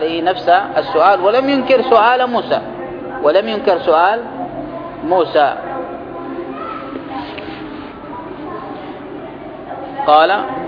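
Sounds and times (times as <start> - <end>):
speech: 0.0 - 4.4, 5.0 - 5.6, 10.1 - 10.6
children chattering in a room: 0.3 - 10.6.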